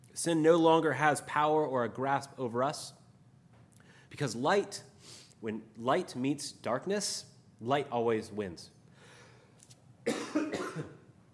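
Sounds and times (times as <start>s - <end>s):
speech: 0.2s - 3.0s, 4.1s - 8.8s
person coughing with rough throaty hacks: 10.0s - 11.1s.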